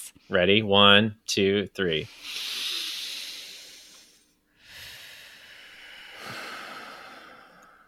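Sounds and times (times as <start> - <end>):
speech: 0.1 - 2.4
group of four people taking a deep breath together: 2.2 - 7.8.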